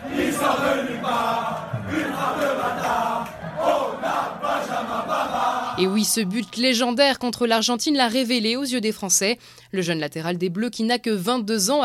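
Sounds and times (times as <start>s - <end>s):
large crowd of football supporters chanting a song in unison: 0.0s - 6.6s
speech: 5.8s - 11.8s.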